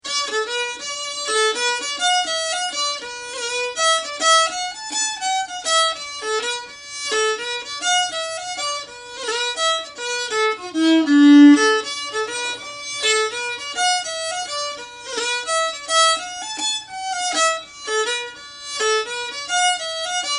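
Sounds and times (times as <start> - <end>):
violin tune: 0.1 - 20.3.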